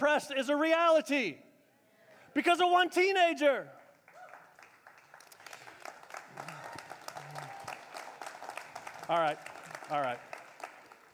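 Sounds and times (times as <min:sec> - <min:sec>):
speech: 0:00.0 - 0:01.4, 0:02.3 - 0:03.8, 0:09.1 - 0:10.3
church audience clapping: 0:03.8 - 0:11.1.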